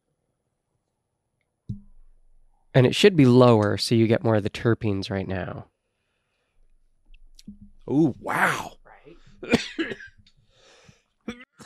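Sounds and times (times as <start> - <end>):
speech: 2.8 - 5.7, 7.5 - 8.8, 9.4 - 10.1
short vocal sound: 7.9 - 9.2
harsh coughs: 9.4 - 10.1, 11.3 - 11.6
rough breathy exhale: 10.5 - 11.0.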